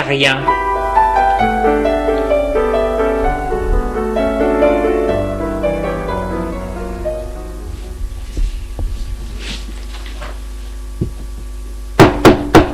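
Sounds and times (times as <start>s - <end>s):
gentle music: 0.0s - 8.8s
speech: 0.1s - 0.6s
faint thuds: 7.6s - 10.4s, 11.0s - 12.7s
sharp knocks on a door: 8.0s - 9.2s, 12.0s - 12.7s.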